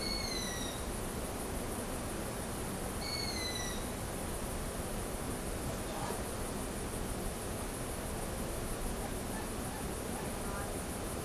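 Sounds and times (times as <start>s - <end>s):
owl whistled calls: 0.0s - 0.8s, 3.0s - 3.9s
steady background hiss: 0.0s - 11.2s.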